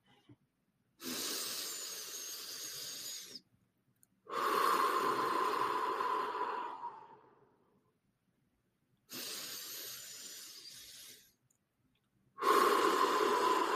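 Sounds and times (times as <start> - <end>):
deep breaths in through the nose and out through the mouth: 1.0 - 3.5, 4.2 - 7.7, 9.1 - 11.4, 12.4 - 13.7.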